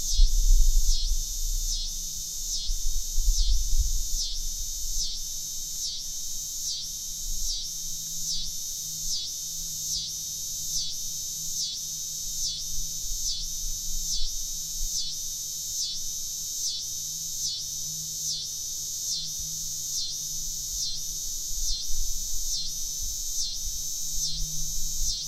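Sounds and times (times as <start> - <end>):
coastal scissor grinder cicada singing: 0.0 - 25.2.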